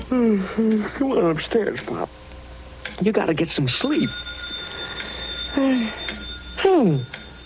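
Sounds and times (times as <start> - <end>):
speech: 0.1 - 2.2, 3.0 - 4.3, 5.6 - 7.2
telephone ringing with a thin high electronic trill: 3.6 - 7.4.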